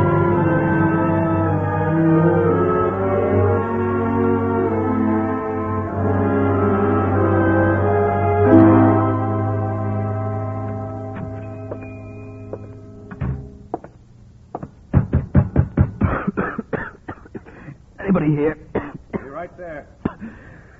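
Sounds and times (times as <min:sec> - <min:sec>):
steady droning tone: 0:00.0 - 0:13.9
knocks: 0:11.1 - 0:16.4
person coughing in a rough harsh fit: 0:16.0 - 0:17.8, 0:18.8 - 0:19.4, 0:20.0 - 0:20.4.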